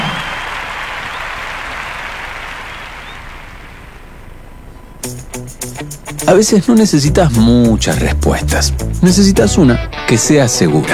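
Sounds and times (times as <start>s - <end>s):
applause from a large audience for an orchestra: 0.0s - 4.1s
speech: 5.0s - 10.9s.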